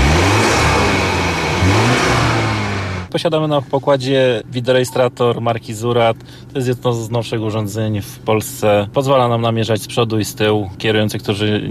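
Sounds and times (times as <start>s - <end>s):
police car engine revving, 252 hp automatic four-wheel-drive: 0.0s - 3.1s
speech: 3.1s - 11.6s.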